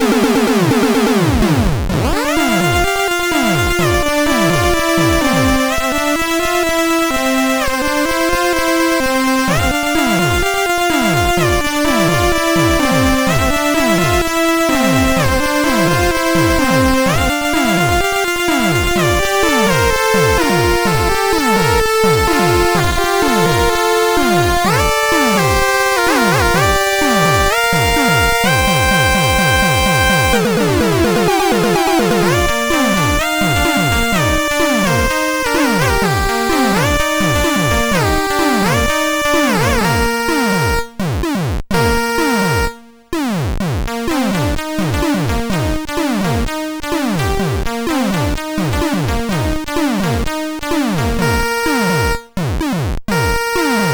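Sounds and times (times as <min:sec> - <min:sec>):
stereo beat on a CSG8580R5 SID chip: 0:00.0 - 0:53.9.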